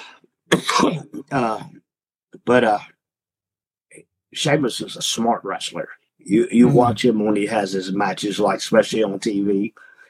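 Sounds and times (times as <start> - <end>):
person coughing: 0.5 - 1.7
person clearing throat: 0.5 - 1.8
speech: 0.7 - 1.8, 2.4 - 2.9, 4.3 - 9.9.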